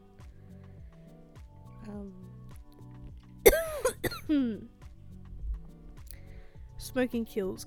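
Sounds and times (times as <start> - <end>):
quieter breathy sounds: 0.4 - 1.0, 6.1 - 6.8
speech: 1.9 - 2.3, 4.0 - 4.8, 6.9 - 7.6
person in a harsh coughing fit: 3.5 - 4.4.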